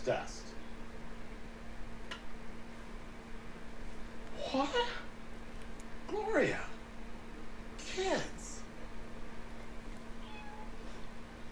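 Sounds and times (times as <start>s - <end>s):
speech: 0.0s - 0.4s, 4.5s - 5.0s, 6.1s - 6.7s, 8.0s - 8.3s
steady hiss and low hum of noise: 0.0s - 11.5s
cat meowing: 10.2s - 10.8s.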